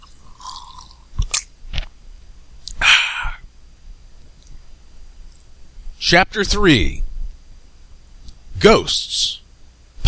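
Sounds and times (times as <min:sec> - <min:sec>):
person sipping water with wet mouth sounds: 0:00.0 - 0:01.2
speech: 0:06.1 - 0:07.0, 0:08.6 - 0:09.4.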